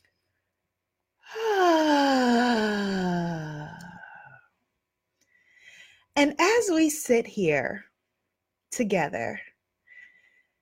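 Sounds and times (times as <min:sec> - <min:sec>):
long voiced sigh letting out a deep breath: 0:01.2 - 0:04.5
speech: 0:06.7 - 0:07.9, 0:08.8 - 0:09.5.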